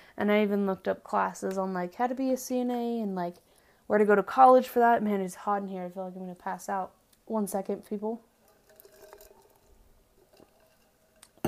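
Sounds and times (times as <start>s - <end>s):
speech: 0.2s - 8.3s
soft gurgling trickle of water: 8.4s - 11.2s
water being poured or sipped: 8.4s - 11.4s.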